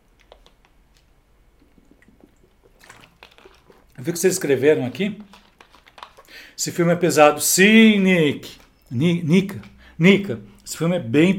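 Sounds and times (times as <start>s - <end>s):
person drinking water: 0.1s - 4.5s, 5.2s - 6.6s
liquid sloshing: 0.1s - 6.6s
speech: 4.0s - 5.4s, 6.6s - 11.3s.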